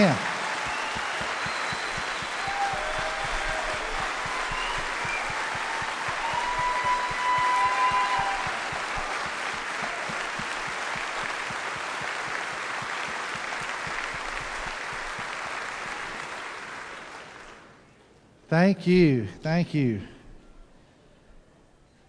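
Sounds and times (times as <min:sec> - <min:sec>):
faint whistle or cheer: 0:00.0 - 0:10.2
sustained applause from a large audience: 0:00.0 - 0:17.7
speech: 0:18.5 - 0:20.1.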